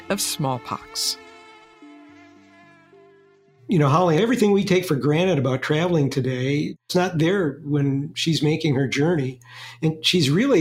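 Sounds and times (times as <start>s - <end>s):
mosquitoes buzzing: 0.0s - 3.7s
speech: 0.1s - 1.2s, 3.7s - 10.5s.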